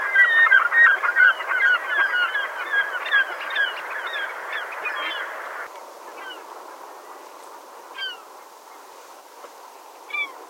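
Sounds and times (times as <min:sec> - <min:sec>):
glaucous gull harsh honking calls: 0:00.0 - 0:06.4
steady background hiss: 0:00.0 - 0:10.4.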